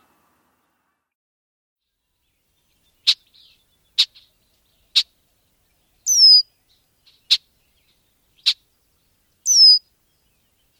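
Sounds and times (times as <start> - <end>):
Red-winged blackbird sharp dry check calls: 3.0 - 5.2, 6.0 - 7.5, 8.4 - 8.7, 9.4 - 9.8.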